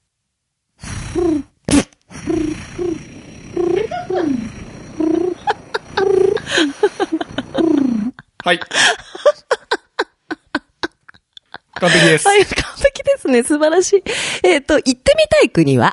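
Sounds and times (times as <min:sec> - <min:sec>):
person imitating pigeon cooing: 0:00.9 - 0:08.3
laughter: 0:05.4 - 0:12.5
speech: 0:08.5 - 0:09.1, 0:11.8 - 0:15.9.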